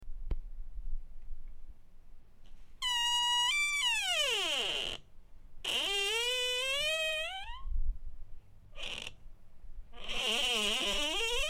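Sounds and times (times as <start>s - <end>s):
door creaking: 2.8s - 7.7s, 10.0s - 11.4s.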